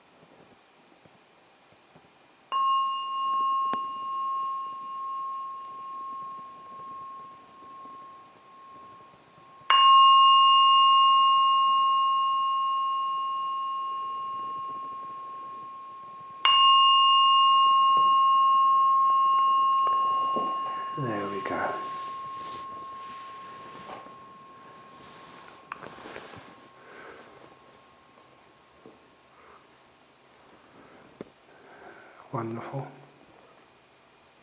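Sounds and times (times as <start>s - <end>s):
meditation gong struck and ringing: 2.5s - 28.5s
speech: 32.3s - 33.0s.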